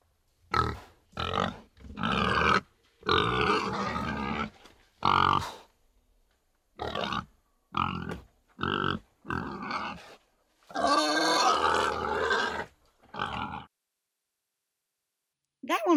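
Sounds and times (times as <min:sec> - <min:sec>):
pig grunting and snorting: 0:00.5 - 0:05.7, 0:06.8 - 0:13.7.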